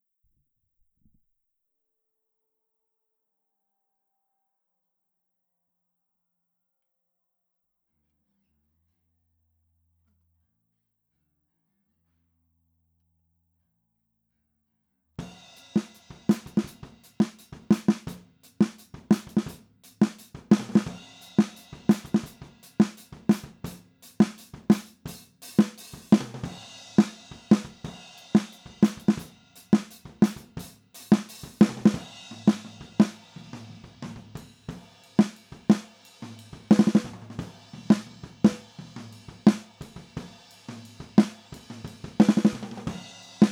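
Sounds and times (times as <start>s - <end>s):
snare drum recorded with SM57 microphone: 15.2s - 43.4s.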